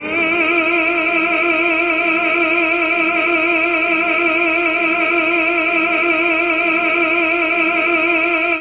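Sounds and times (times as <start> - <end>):
male tenor singing an opera note: 0.0 - 8.6.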